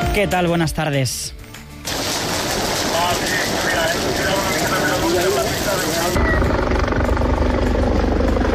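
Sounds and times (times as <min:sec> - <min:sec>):
speech: 0:00.1 - 0:01.4
burning wildfire crackling in La Vall d'Uixó: 0:01.9 - 0:08.5
firefighting helicopters roaring: 0:01.9 - 0:08.5.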